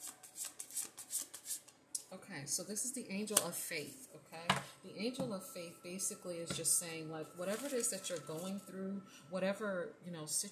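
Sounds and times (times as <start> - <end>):
deck of cards being shuffled: 0.0 - 1.7
speech: 2.1 - 10.5.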